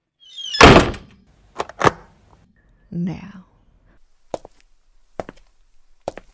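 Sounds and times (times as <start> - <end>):
door creaking and shutting: 0.2 - 2.1
speech: 2.9 - 3.5.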